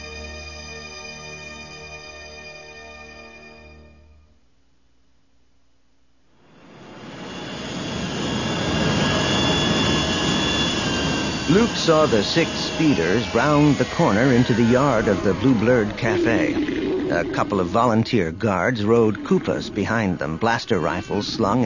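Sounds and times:
tonal engine hum of a souped-up freighter ship: 6.4s - 21.6s
jet-like roar of a souped-up freighter ship flying through clouds: 6.5s - 21.6s
speech: 11.6s - 21.6s.

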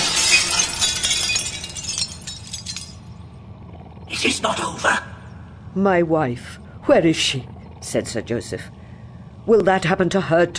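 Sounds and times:
loud crash of shattering glass: 0.0s - 3.2s
tinkling clinking glass shards: 0.0s - 3.2s
speech: 4.2s - 5.1s, 5.8s - 8.8s, 9.5s - 10.5s.

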